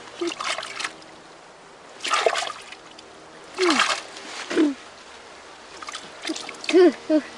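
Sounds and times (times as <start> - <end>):
water splashing while washing at a lake: 0.2 - 1.1, 2.0 - 4.2, 5.8 - 6.8.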